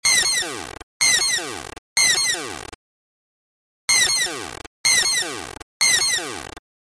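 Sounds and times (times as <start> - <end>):
alarm: 0.0 - 2.8, 3.9 - 6.6.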